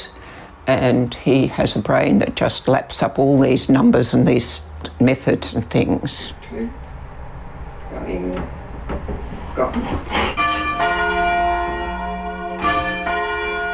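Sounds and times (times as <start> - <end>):
speech: 0.7 - 6.8, 7.9 - 8.6, 9.6 - 10.4
faint knocks and clatter: 8.3 - 13.3
large church bells ringing: 10.3 - 13.7.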